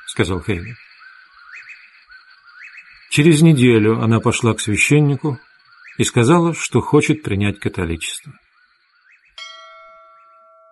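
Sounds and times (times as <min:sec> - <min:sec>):
speech: 0:00.2 - 0:00.9, 0:03.2 - 0:08.4
church bell strike: 0:09.4 - 0:10.7.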